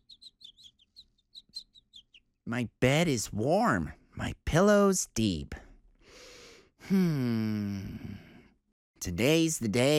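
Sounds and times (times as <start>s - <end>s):
small birds peeping and chirping: 0.0s - 2.8s
speech: 2.5s - 5.6s, 6.9s - 8.3s, 9.0s - 9.9s.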